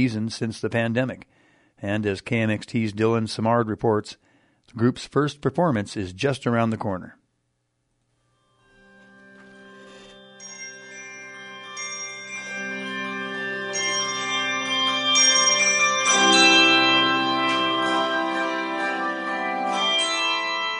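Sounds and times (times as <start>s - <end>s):
speech: 0.0s - 7.2s
handbell choir ringing a melody at fall practice in Kodiak: 9.6s - 20.7s.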